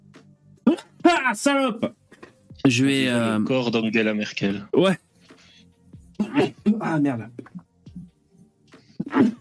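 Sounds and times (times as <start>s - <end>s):
speech: 1.2s - 2.0s, 2.6s - 5.0s, 6.4s - 7.5s
loud sneeze: 6.2s - 6.8s, 9.0s - 9.4s.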